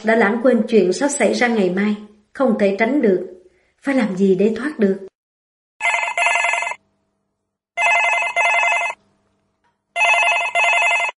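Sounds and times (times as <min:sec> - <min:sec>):
speech: 0:00.0 - 0:05.1
telephone bell ringing: 0:05.8 - 0:06.8, 0:07.8 - 0:09.0, 0:10.0 - 0:11.1.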